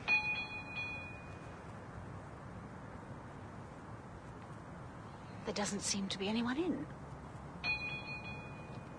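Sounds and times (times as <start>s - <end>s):
doorbell ringing with a bright metallic chime: 0.1s - 1.3s, 7.7s - 8.8s
speech: 5.5s - 7.1s.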